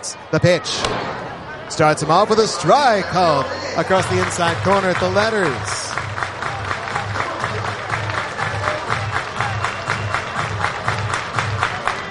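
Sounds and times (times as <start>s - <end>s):
large baseball stadium crowd in Dayton roaring: 0.0s - 12.0s
speech: 0.3s - 5.8s
rhythmic clapping or chanting of baseball stadium crowd: 4.2s - 12.0s.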